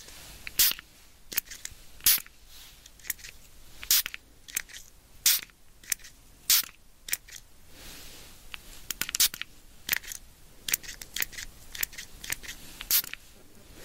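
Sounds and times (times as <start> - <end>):
spray bottle spritzing: 0.4 - 2.3, 3.0 - 7.4, 8.9 - 13.2.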